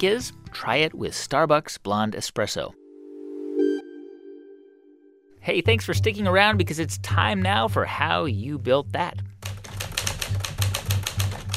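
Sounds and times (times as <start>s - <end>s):
speech: 0.0s - 2.8s, 5.4s - 9.3s
typing on a vintage manual typewriter: 9.3s - 11.5s.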